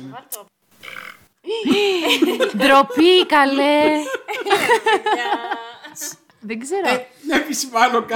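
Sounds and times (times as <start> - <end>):
speech: 0.0 - 8.1
llama burping with low gurgling grunts: 0.8 - 1.3
laughter: 1.5 - 6.2.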